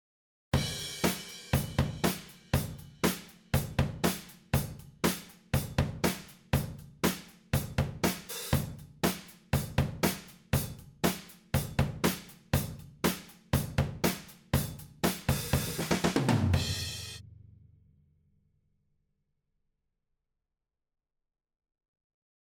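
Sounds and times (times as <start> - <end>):
drum ambience: 0.6 - 17.2.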